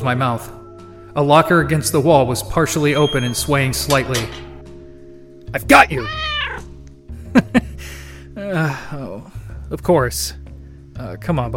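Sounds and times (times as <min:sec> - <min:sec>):
speech: 0:00.0 - 0:00.6, 0:01.2 - 0:04.5, 0:05.5 - 0:06.2, 0:08.5 - 0:10.4, 0:11.0 - 0:11.5
overweight creamsicle-colored cat with black ears meowing: 0:05.9 - 0:06.7.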